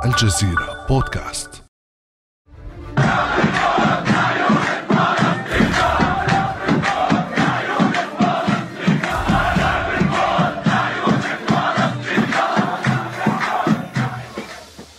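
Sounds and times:
speech: 0.1s - 1.6s
large crowd of young protesters chanting at Damascus Gate in Jerusalem's Old City: 3.0s - 14.9s.

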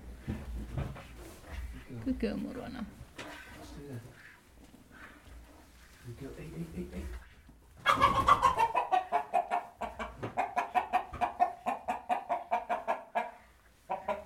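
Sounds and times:
speech: 2.0s - 3.0s, 6.1s - 7.2s
turkey and other poultry clucking: 7.8s - 14.2s.

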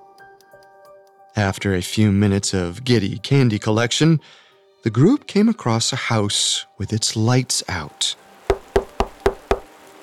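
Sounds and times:
speech: 1.4s - 8.2s
firm knocks on the wooden front door of a house: 8.5s - 9.7s.

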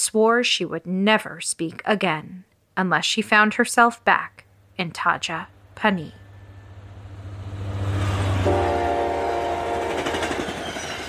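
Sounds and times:
speech: 0.0s - 6.2s
train horn blast: 6.2s - 10.5s
train rumbling with rolling clatter of wheels: 8.0s - 11.0s.

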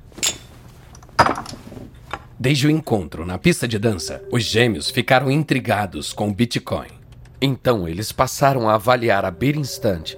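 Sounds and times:
small vodka shot glasses clinking in a toast: 0.2s - 0.6s
speech: 2.4s - 10.1s.

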